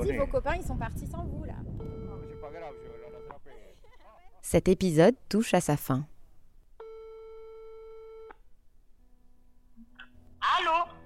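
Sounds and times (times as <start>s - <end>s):
speech: 0.0s - 1.6s, 2.5s - 3.7s, 4.5s - 6.1s
telephone busy tone after a call cuts off: 1.8s - 3.4s, 6.8s - 8.4s.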